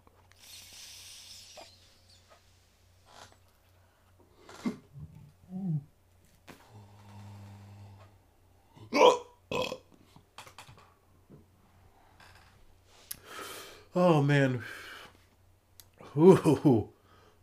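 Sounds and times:
faint low hum: 0:00.0 - 0:17.4
person burping: 0:08.8 - 0:09.9
speech: 0:14.0 - 0:14.8, 0:16.2 - 0:16.9.

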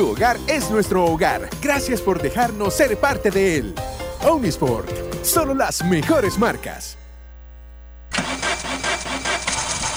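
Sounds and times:
speech: 0:00.0 - 0:07.0
low hum: 0:06.3 - 0:08.4
car engine cranking without catching: 0:08.1 - 0:09.9.

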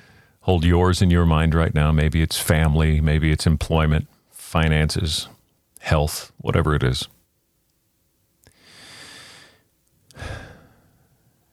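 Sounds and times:
deep breath in through the nose, out through mouth: 0:00.0 - 0:00.4, 0:08.4 - 0:11.4
speech: 0:00.4 - 0:07.2.

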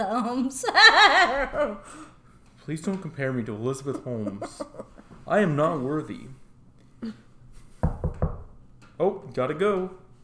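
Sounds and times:
speech: 0:00.0 - 0:06.4, 0:07.0 - 0:07.2, 0:09.0 - 0:10.0
laughter: 0:00.4 - 0:01.9, 0:03.8 - 0:05.2
firm knocking on a door: 0:07.8 - 0:08.6.

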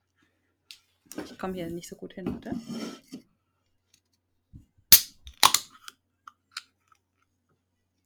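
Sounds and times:
speech: 0:01.2 - 0:03.3
drink can opening with a metallic crack and fizzy hiss: 0:04.9 - 0:05.9.

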